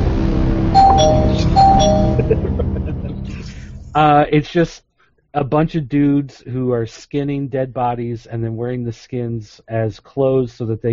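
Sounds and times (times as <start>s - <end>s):
bright bell sound effect dings: 0.8s - 2.4s
laughter: 2.2s - 3.6s
speech: 3.9s - 10.9s.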